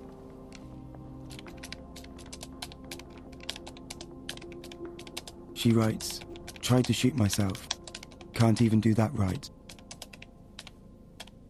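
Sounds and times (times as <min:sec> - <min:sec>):
low electrical hum: 0:00.0 - 0:11.4
typing on a computer keyboard: 0:01.3 - 0:08.7, 0:09.7 - 0:11.4
speech: 0:05.6 - 0:07.7, 0:08.4 - 0:09.6.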